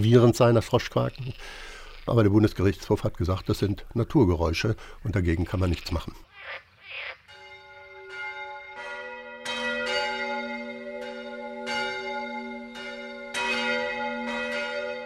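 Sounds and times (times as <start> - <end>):
speech: 0.0 - 7.2
church bells ringing in an overlapping peal: 7.3 - 15.0.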